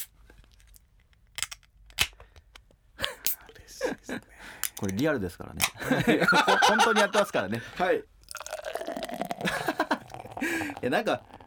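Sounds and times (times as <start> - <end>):
speech: 3.8 - 8.1, 10.8 - 11.3
laughter: 5.8 - 8.0, 9.4 - 10.1
Yebisu beer pouring into a glass: 8.2 - 11.4.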